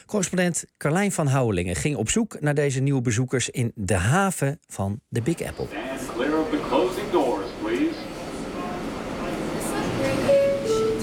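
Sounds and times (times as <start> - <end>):
speech: 0.0 - 5.8
subway train riding to Brooklyn: 5.6 - 11.0.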